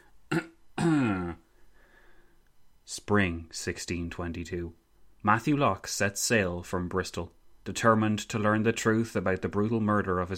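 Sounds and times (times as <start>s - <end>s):
dramatic throat clearing: 0.3s - 1.5s
speech: 3.1s - 10.3s.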